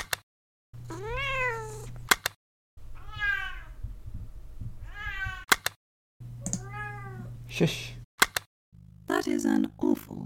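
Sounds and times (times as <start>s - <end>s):
small cat meowing: 0.9s - 1.9s, 2.9s - 3.8s, 4.8s - 5.5s, 6.6s - 7.3s
speech: 7.6s - 8.0s, 9.2s - 10.2s.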